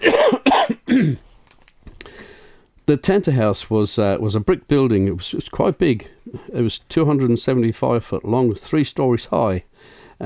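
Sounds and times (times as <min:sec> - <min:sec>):
loud rough hoarse coughs: 0:00.0 - 0:01.3
speech: 0:02.9 - 0:10.2.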